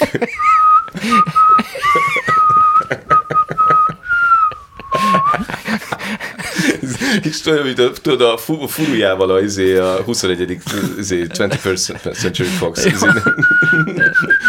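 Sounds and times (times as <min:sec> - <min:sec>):
laughter: 0:00.0 - 0:07.7, 0:08.6 - 0:14.4
voices: 0:00.0 - 0:14.4
speech: 0:00.1 - 0:01.4, 0:07.4 - 0:14.0
person whistling a song melody: 0:00.3 - 0:05.6, 0:12.8 - 0:14.4.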